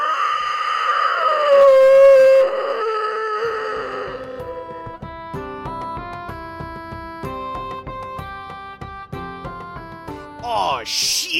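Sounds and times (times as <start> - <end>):
distant creature scream: 0.0 - 4.8.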